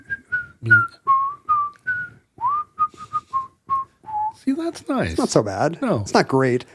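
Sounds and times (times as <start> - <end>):
person whistling a short wavering tune: 0.0 - 4.4
speech: 0.6 - 1.0, 4.5 - 6.7.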